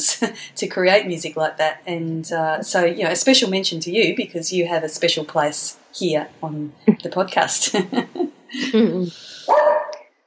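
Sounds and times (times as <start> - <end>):
speech: 0.1 - 9.7
laughter: 7.6 - 9.1
dog whining yelp: 9.5 - 10.0
dog barking in short sharp bursts: 9.5 - 10.1.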